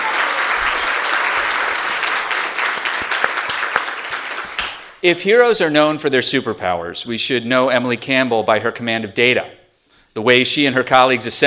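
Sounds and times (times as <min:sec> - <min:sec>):
crowd applauding: 0:00.0 - 0:05.0
speech: 0:05.0 - 0:09.6, 0:10.2 - 0:11.4.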